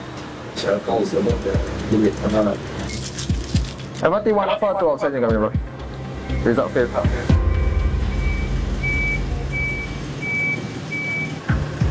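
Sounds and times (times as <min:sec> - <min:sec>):
tow truck engine rumble: 0:00.0 - 0:11.9
speech: 0:00.6 - 0:03.3, 0:04.0 - 0:05.7, 0:06.4 - 0:07.4
tow truck reversing beeps: 0:07.5 - 0:11.6.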